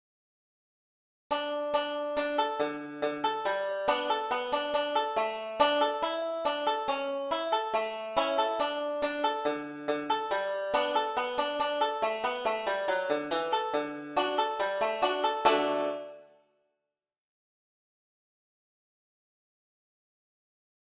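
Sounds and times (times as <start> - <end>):
five-string banjo solo: 1.3 - 16.3.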